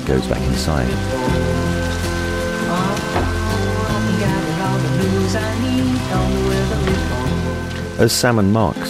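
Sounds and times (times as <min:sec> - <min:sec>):
steady rain falling on surfaces: 0:00.0 - 0:08.8
sustained tonal music: 0:00.0 - 0:08.8
speech: 0:00.1 - 0:01.5, 0:08.0 - 0:08.8.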